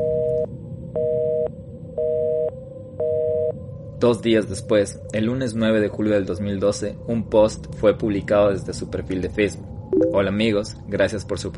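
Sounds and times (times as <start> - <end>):
telephone busy signal dual tone: 0.0 - 3.5, 10.0 - 10.2
faint hum: 0.0 - 11.5
speech: 4.0 - 11.5.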